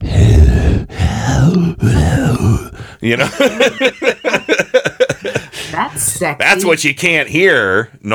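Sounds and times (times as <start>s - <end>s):
heavy breathing directly into a microphone: 0.0s - 3.1s, 5.2s - 6.0s
speech: 3.0s - 4.4s, 6.0s - 8.1s
laughter: 3.1s - 5.8s.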